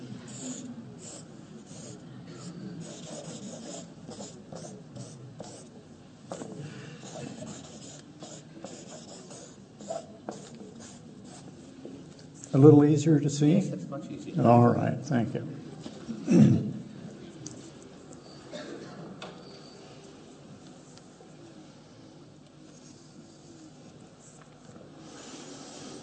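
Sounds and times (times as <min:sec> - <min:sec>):
pencil point scratching across paper: 0:00.2 - 0:05.7, 0:06.3 - 0:11.6
speech: 0:12.6 - 0:15.6.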